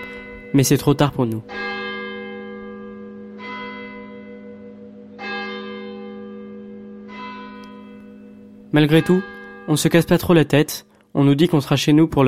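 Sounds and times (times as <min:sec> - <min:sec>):
church bell tolling: 0:00.0 - 0:12.2
speech: 0:00.5 - 0:01.8, 0:08.7 - 0:12.2.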